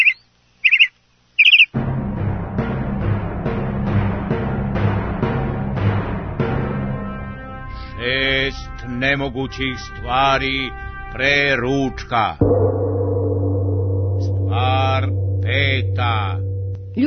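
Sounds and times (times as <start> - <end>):
bird chirps: 0.0 - 1.8
steady music: 1.8 - 17.0
speech: 8.0 - 12.7, 15.0 - 16.4.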